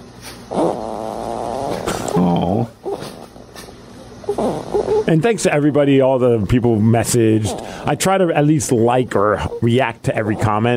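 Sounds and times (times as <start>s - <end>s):
soft snoring with a snuffling breath: 0.5s - 3.3s, 4.3s - 5.1s, 7.4s - 8.0s
speech: 5.1s - 10.7s.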